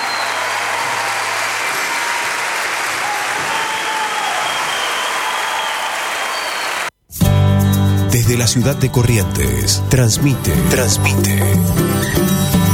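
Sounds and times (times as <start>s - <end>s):
crowd applauding: 0.0s - 7.0s
speech: 8.3s - 12.6s.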